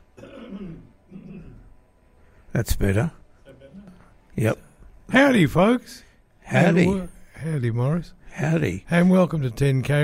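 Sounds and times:
person clearing throat: 0.1 - 1.8
person coughing: 0.2 - 1.7
speech: 2.5 - 3.2, 4.4 - 10.0.

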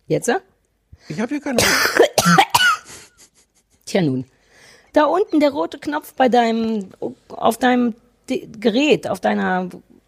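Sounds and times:
speech: 0.1 - 2.5, 3.9 - 4.3, 5.0 - 9.9
quick harsh coughs: 1.6 - 3.2.

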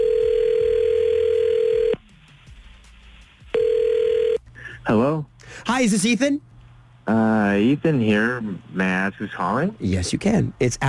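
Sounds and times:
phone line ringback tone on an outgoing call: 0.0 - 2.0, 3.5 - 4.4
speech: 5.8 - 6.5, 7.1 - 10.8.

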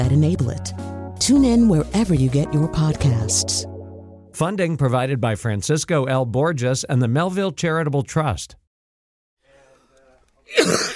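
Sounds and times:
speech: 0.0 - 3.7, 4.4 - 8.6, 10.5 - 10.9
person coughing from allergies: 10.5 - 10.9.

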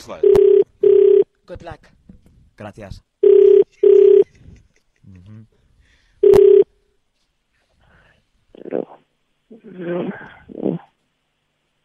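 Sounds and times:
speech: 0.0 - 0.5, 1.5 - 2.0, 2.6 - 3.1
telephone ringback tone while dialing out: 0.2 - 1.2, 3.2 - 4.3, 6.2 - 6.7.

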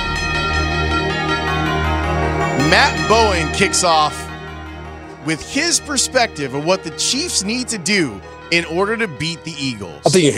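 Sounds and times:
bells ringing in a dense steady peal: 0.0 - 7.3
speech: 2.7 - 4.2, 5.2 - 10.3.

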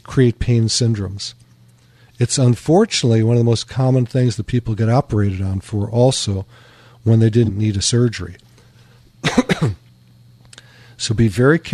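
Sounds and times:
faint low hum: 0.0 - 11.7
speech: 0.1 - 1.5, 2.2 - 8.5, 11.0 - 11.7
person coughing harshly: 9.2 - 9.8.

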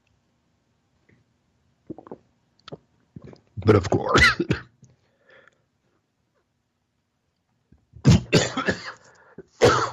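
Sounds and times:
speech: 3.7 - 4.7
person coughing: 4.0 - 4.7, 8.0 - 9.9
throat clearing: 8.0 - 9.9.

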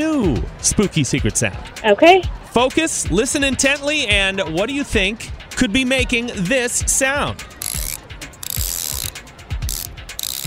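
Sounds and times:
speech: 0.0 - 7.6
socket wrench ratcheting with metallic pawl clicks: 7.6 - 10.4.

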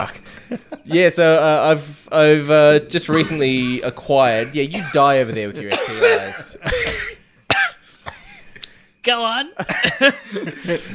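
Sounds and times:
speech: 0.0 - 6.9, 9.0 - 10.9
laughter: 0.2 - 0.9, 3.1 - 7.2, 9.6 - 10.9
coughing fit with harsh raspy bursts: 4.2 - 8.4, 9.6 - 10.9.

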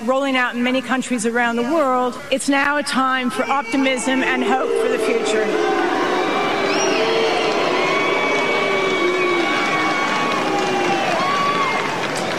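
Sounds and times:
speech: 0.0 - 5.8
large stadium crowd booing at the Australian Open final: 2.7 - 12.3.

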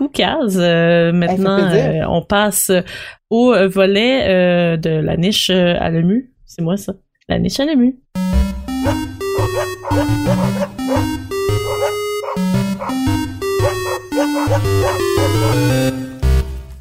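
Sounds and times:
speech: 0.1 - 8.0
steady bass line: 8.2 - 16.7
bouncy musical jingle of pitched dog barks: 8.9 - 13.0, 13.6 - 15.6.

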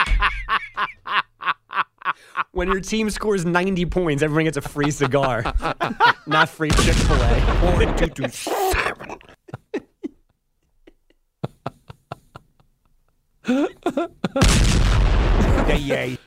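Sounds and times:
laughter: 0.0 - 2.6, 4.3 - 12.9, 13.5 - 14.5, 15.4 - 16.2
speech: 2.6 - 8.8, 15.8 - 16.2
sharp bangs: 6.6 - 8.2, 14.4 - 16.0
cannon fire booming: 6.7 - 8.2, 14.4 - 16.0.

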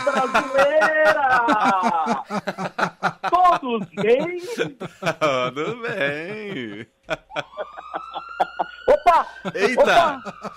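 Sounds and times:
ambulance siren passing: 0.0 - 2.2, 6.5 - 10.5
snickering laughter: 0.0 - 10.5
speech: 0.1 - 8.2, 9.1 - 10.5.

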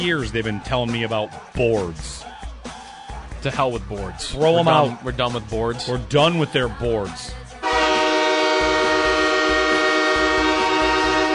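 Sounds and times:
speech: 0.0 - 2.3, 3.4 - 7.4
sustained train horn blaring: 7.6 - 11.3.

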